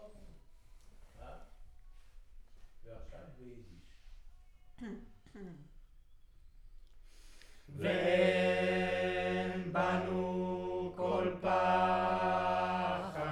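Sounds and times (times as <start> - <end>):
choir singing recorded with a centre U47 microphone: 7.7 - 13.2.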